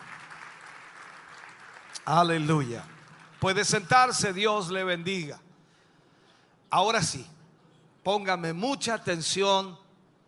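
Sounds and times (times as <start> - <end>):
congregation applauding: 0.0 - 4.8
speech: 2.1 - 5.4, 6.7 - 7.4, 8.0 - 9.8.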